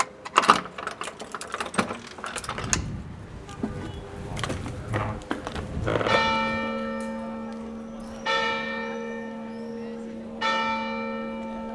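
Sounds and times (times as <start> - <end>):
clattering and knocking: 0.0 - 7.4
single church bell ringing alarm: 5.8 - 11.7.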